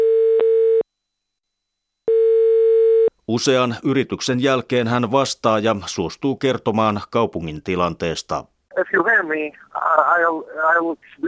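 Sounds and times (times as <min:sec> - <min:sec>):
ringing tone of a call placed to a mobile phone: 0:00.0 - 0:00.8, 0:02.0 - 0:03.1
speech: 0:03.3 - 0:11.2.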